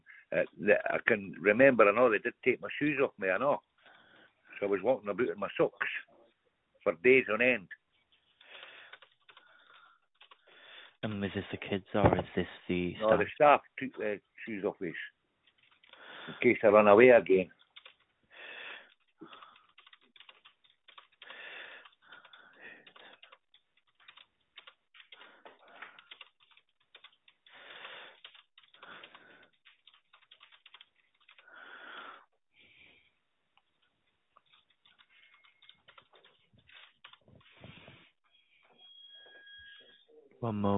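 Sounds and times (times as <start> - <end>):
speech: 0.3 - 3.7, 4.6 - 6.1, 6.8 - 7.8, 11.0 - 15.2, 16.3 - 17.6
typing on a computer keyboard: 8.4 - 10.5, 17.6 - 18.1, 18.9 - 31.4, 34.4 - 37.5.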